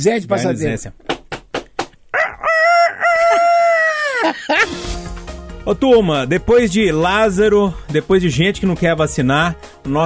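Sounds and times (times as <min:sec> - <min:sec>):
speech: 0:00.0 - 0:01.1, 0:05.6 - 0:10.0
quick taps: 0:01.0 - 0:02.0
chicken from Indonesia crowing: 0:02.1 - 0:04.7
laughter: 0:02.2 - 0:04.8.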